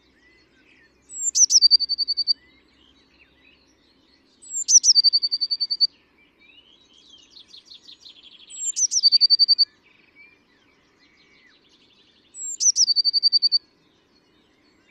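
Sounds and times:
Eurasian blue tit Cyanistes caeruleus singing high notes and trill: 0.2s - 14.9s
quiet bird chattering: 1.1s - 2.4s, 4.4s - 5.9s, 7.0s - 9.8s, 12.4s - 13.6s.

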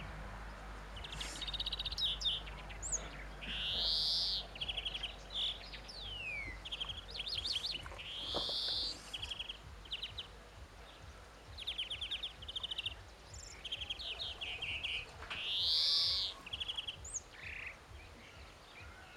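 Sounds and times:
European greenfinch Chloris chloris long nasal wheeze: 1.0s - 2.1s, 8.4s - 9.6s
European greenfinch Chloris chloris trilling: 1.0s - 19.1s.

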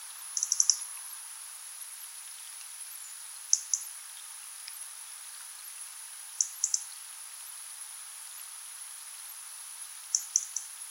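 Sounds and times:
faint hiss: 0.0s - 10.8s
European robin tick calls: 0.3s - 1.1s, 2.3s - 4.8s, 6.4s - 7.0s, 10.1s - 10.8s.

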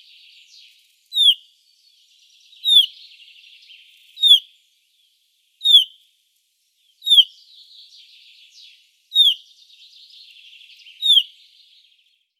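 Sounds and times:
other small birds twittering softly: 0.0s - 12.3s
common chaffinch Fringilla coelebs pink calls: 1.2s - 1.4s, 2.7s - 2.9s, 4.2s - 4.4s, 5.7s - 5.9s, 7.1s - 7.3s, 9.2s - 9.4s, 11.0s - 11.3s.

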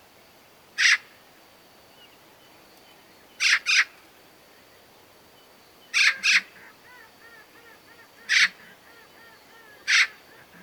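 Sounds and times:
Eurasian magpie Pica pica harsh rasping chak calls: 6.0s - 6.5s, 8.2s - 8.6s.

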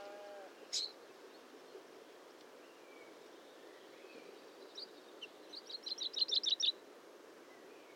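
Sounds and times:
faint low background hiss: 0.0s - 7.9s
common chaffinch Fringilla coelebs song: 0.6s - 6.8s.

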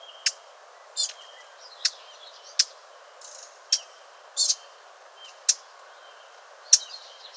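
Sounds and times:
Eurasian blackcap Sylvia atricapilla calling with hard dry ticks: 0.1s - 0.4s, 1.0s - 4.7s, 5.2s - 5.7s, 6.7s - 7.1s.

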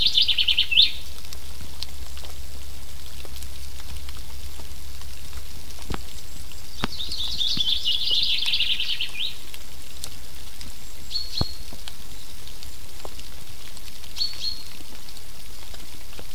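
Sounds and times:
steady rain patter: 0.0s - 16.3s
common chaffinch Fringilla coelebs singing: 5.4s - 10.0s, 10.6s - 12.9s.

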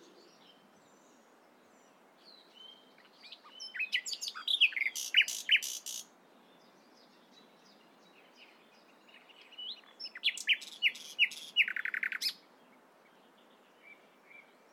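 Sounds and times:
Common nightingale Luscinia megarhynchos singing: 0.0s - 14.7s.

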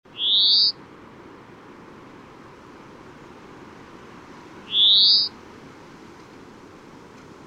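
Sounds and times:
European greenfinch Chloris chloris wheezy calls: 0.1s - 0.8s, 4.6s - 5.4s
soft background hiss: 0.1s - 7.4s.

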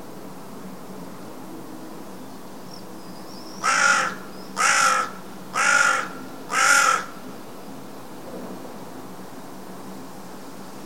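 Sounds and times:
carrion crow Corvus corone cawing: 3.6s - 7.2s.

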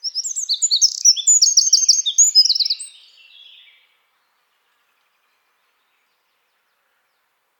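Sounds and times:
Eurasian wren song: 0.0s - 3.9s.

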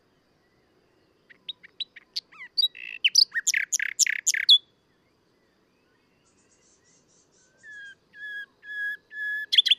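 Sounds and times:
Common nightingale Luscinia megarhynchos song: 0.0s - 9.7s.

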